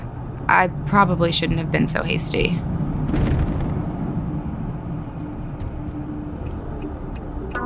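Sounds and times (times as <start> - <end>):
car driving with steady low engine rumble: 0.0 - 7.6
road noise: 0.0 - 7.6
speech: 0.5 - 3.3
brief louder thump or knock: 3.1 - 3.7.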